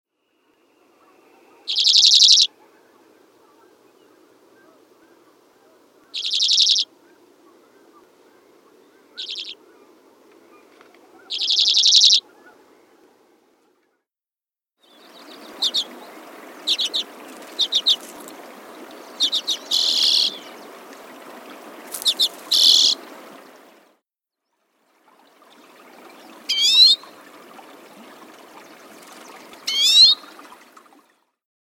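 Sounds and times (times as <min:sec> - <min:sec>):
Hoary Redpoll calling: 0:00.8 - 0:12.9, 0:14.8 - 0:18.2, 0:18.8 - 0:20.8, 0:21.9 - 0:23.1, 0:26.1 - 0:27.3, 0:29.5 - 0:30.4.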